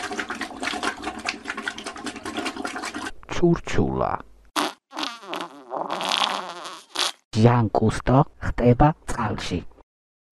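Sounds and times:
speech: 3.4 - 4.3, 7.4 - 9.7
teeth being brushed: 4.6 - 7.2.

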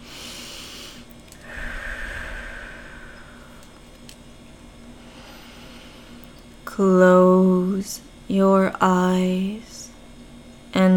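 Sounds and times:
deep breath taken before guiding meditation: 0.0 - 3.9, 5.0 - 6.3
speech: 6.8 - 9.8.

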